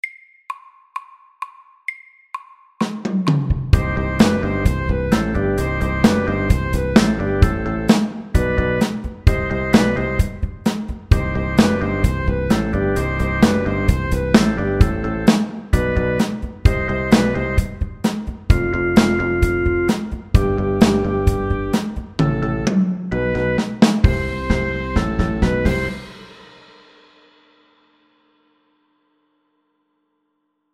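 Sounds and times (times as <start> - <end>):
fast rock pop saxophone at 130 BPM: 3.8 - 26.4.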